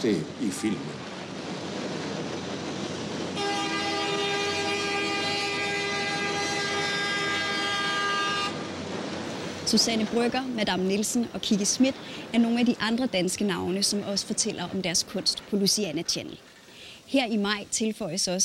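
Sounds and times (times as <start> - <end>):
speech: 0.0 - 1.2, 9.7 - 16.5, 17.1 - 18.4
train rumbling past with a constant low roar: 0.0 - 16.6
loud steady train horn blaring: 0.5 - 1.0, 3.3 - 8.9.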